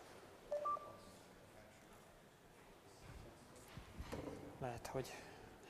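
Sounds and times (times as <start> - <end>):
mobile phone keypad two-tone dialing beep: 0.5 - 1.0
speech: 4.6 - 5.3.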